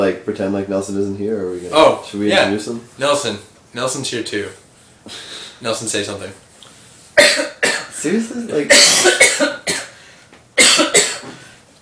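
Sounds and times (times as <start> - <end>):
speech: 0.0 - 6.4, 7.2 - 9.8
harsh coughs: 7.2 - 8.0, 8.7 - 10.0, 10.6 - 11.5.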